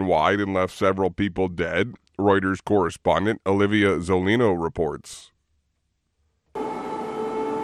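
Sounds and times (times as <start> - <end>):
speech: 0.0 - 5.3
civil defense air raid siren wailing during a missile and drone attack in Kyiv: 6.6 - 7.6.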